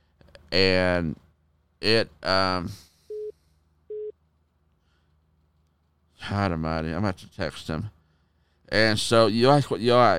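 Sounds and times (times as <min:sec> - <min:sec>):
speech: 0:00.5 - 0:01.2, 0:01.8 - 0:02.9, 0:06.2 - 0:08.0, 0:08.7 - 0:10.1
call-waiting beeps on a phone line: 0:03.1 - 0:03.3.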